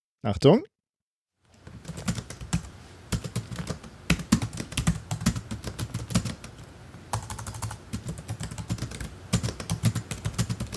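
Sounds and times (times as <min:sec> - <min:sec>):
speech: 0:00.2 - 0:00.7
computer keyboard keys clattering while typing: 0:01.6 - 0:10.7.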